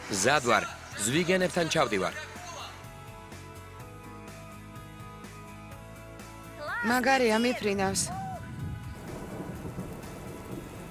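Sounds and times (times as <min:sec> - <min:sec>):
speech: 0:00.1 - 0:02.3, 0:06.8 - 0:08.2
heavy tropical rain: 0:08.3 - 0:10.8.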